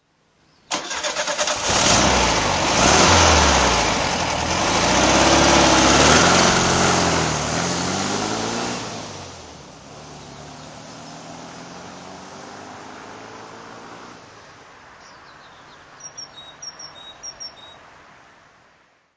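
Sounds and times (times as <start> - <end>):
Volkswagen 1303 driving off: 0.7 - 14.5.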